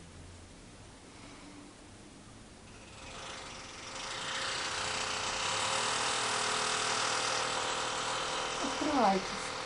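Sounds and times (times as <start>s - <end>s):
drilling whine: 2.7s - 9.6s
speech: 9.0s - 9.4s.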